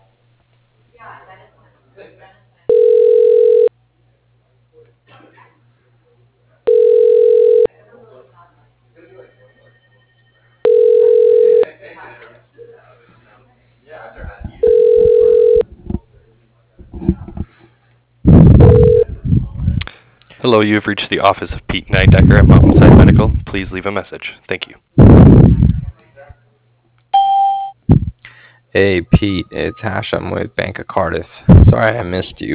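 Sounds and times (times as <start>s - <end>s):
low constant hum: 0.0s - 32.5s
ringback tone of a phone call being transferred to an office voicemail: 2.7s - 3.7s, 6.7s - 7.7s, 9.4s - 11.6s, 14.6s - 15.6s, 18.6s - 19.0s, 27.2s - 27.8s
speech: 20.5s - 24.9s, 28.7s - 32.5s.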